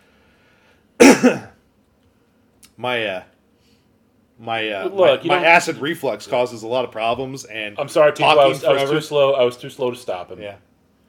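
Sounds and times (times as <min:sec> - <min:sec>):
harsh throat-clearing cough: 0:01.0 - 0:01.6
speech: 0:01.1 - 0:01.5, 0:02.8 - 0:03.3, 0:04.4 - 0:10.7.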